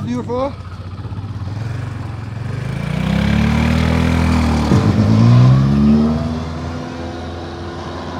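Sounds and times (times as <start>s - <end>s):
speech: 0.1s - 0.7s
car engine revving during a push-start: 2.5s - 8.1s.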